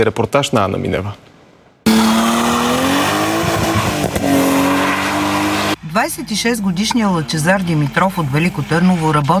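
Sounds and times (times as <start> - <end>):
speech: 0.0 - 1.3, 6.0 - 9.3
drifting car engine revving hard at a licensed track at night: 1.9 - 5.8
drifting car tires squealing: 1.9 - 5.8.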